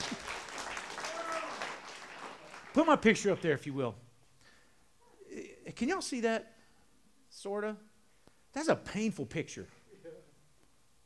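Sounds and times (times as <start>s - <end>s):
small audience giving quiet polite golf-clap applause: 0.0s - 4.0s
speech: 2.8s - 4.1s, 5.8s - 6.6s, 7.4s - 7.9s, 8.5s - 9.8s.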